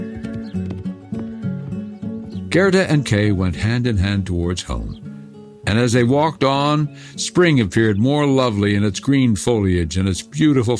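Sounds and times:
horse hooves clip-clopping as a rider rides away: 0:00.0 - 0:03.1
speech: 0:02.5 - 0:05.0, 0:05.7 - 0:10.7.

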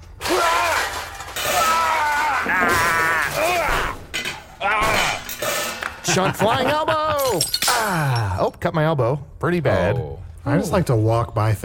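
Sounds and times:
potions smashing in a video game: 0:00.2 - 0:06.2, 0:07.1 - 0:08.4
laughter: 0:06.0 - 0:08.1
speech: 0:06.1 - 0:11.6.

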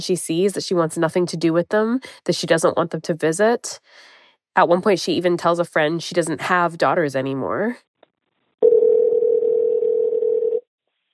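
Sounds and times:
speech: 0:00.0 - 0:07.9
electronic phone ringing tone on a recorded phone call line: 0:08.6 - 0:10.7.

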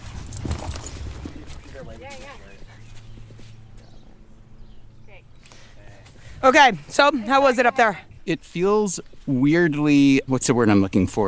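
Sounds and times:
ridden horse's hooves thudding on arena footing at a walk: 0:00.0 - 0:04.2
speech: 0:01.8 - 0:02.6, 0:06.4 - 0:11.2.

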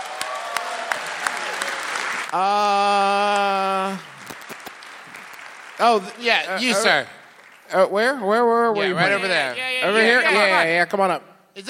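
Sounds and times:
crowd clapping: 0:00.0 - 0:07.9
speech: 0:02.3 - 0:04.1, 0:05.8 - 0:11.6.

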